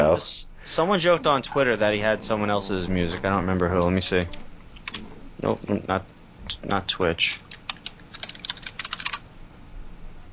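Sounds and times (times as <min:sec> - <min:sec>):
faint room noise: 0:00.0 - 0:10.3
speech: 0:00.1 - 0:07.5
rapid typing on a computer keyboard: 0:07.4 - 0:09.2.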